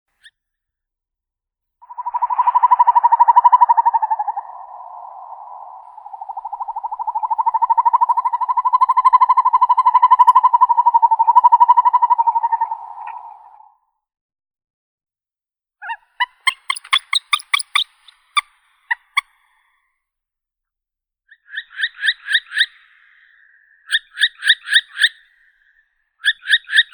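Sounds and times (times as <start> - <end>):
northern hawk owl Surnia ulula calling: 1.9 - 13.7, 15.8 - 19.3, 21.5 - 25.4, 26.2 - 26.9.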